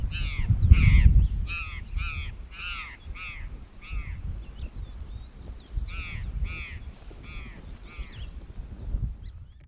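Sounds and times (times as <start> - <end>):
Cyanocorax cristatellus calling: 0.2 - 4.6, 5.7 - 8.3.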